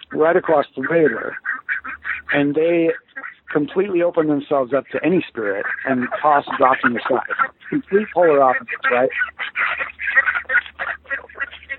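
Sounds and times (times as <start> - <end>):
faint low hum: 0.0 - 11.7
flock of ducks quacking: 0.0 - 11.7
speech: 0.2 - 1.5, 2.3 - 9.8.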